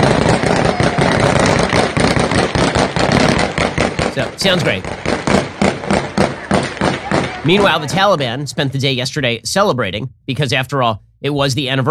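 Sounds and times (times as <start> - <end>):
gunfire outside an airport in Kabul: 0.0 - 8.7
speech: 4.4 - 5.2, 7.4 - 11.8.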